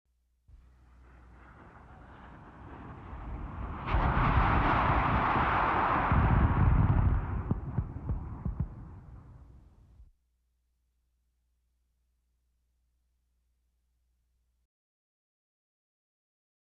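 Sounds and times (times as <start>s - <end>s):
missiles: 0.6s - 10.1s.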